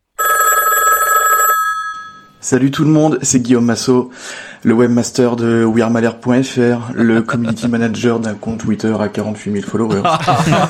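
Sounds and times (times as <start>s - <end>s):
telephone ringing before an answering machine message: 0.2s - 2.4s
speech: 2.4s - 10.6s
laughter: 7.0s - 8.0s, 9.9s - 10.6s.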